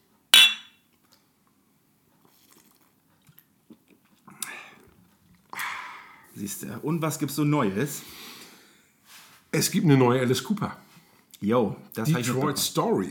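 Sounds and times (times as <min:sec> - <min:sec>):
glasses clinking together in a toast: 0:00.4 - 0:00.7
speech: 0:06.4 - 0:08.2, 0:09.6 - 0:10.8, 0:11.4 - 0:13.0.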